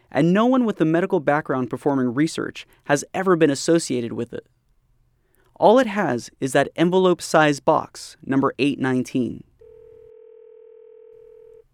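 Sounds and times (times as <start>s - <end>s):
speech: 0.1s - 4.6s, 5.6s - 9.5s
telephone dial tone when calling a number: 9.6s - 11.7s.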